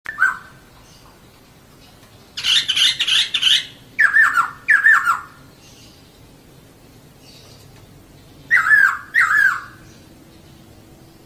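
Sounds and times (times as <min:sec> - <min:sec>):
laughingthrush giving whistles and harsh scratchy chattering: 0:00.1 - 0:00.7, 0:02.4 - 0:06.1, 0:08.5 - 0:10.0.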